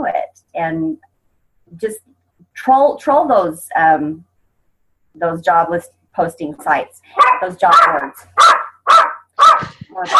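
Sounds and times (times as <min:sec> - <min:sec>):
speech: 0:00.1 - 0:01.1, 0:01.7 - 0:04.3, 0:05.2 - 0:08.5, 0:10.0 - 0:10.1
dog barking: 0:07.2 - 0:10.1.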